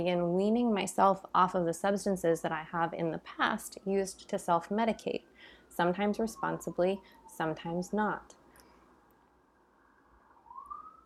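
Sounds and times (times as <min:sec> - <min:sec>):
speech: 0:00.0 - 0:08.4
distant police siren wailing: 0:02.8 - 0:08.5, 0:09.7 - 0:11.0.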